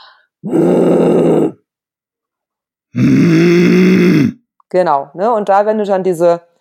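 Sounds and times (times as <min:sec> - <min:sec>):
person making raspy grumbling throat growls pretending to be angry: 0:00.4 - 0:01.7, 0:02.9 - 0:04.4
speech: 0:03.0 - 0:03.4, 0:04.7 - 0:06.5.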